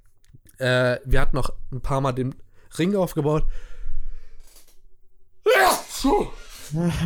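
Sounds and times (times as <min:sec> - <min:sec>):
speech: 0:00.6 - 0:03.7, 0:06.0 - 0:07.0
person sneezing: 0:05.5 - 0:06.9.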